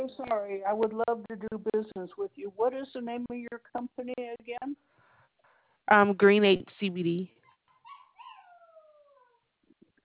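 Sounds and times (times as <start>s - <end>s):
speech: 0.3s - 4.8s, 5.9s - 7.4s
German Shepherd puppy whining: 7.4s - 9.5s.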